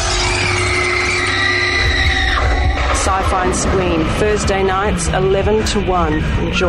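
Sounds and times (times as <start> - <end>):
loud sustained high-pitched scream sound effect in a radio promo: 0.0 - 4.5
dense rumbling wash of noise: 1.6 - 6.6
speech: 3.1 - 6.6.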